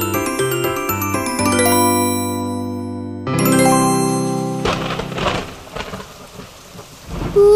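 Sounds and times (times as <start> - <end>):
bright chiming melody: 0.0 - 5.3
heavy rain: 4.4 - 7.5
thunder rumble: 4.6 - 7.5.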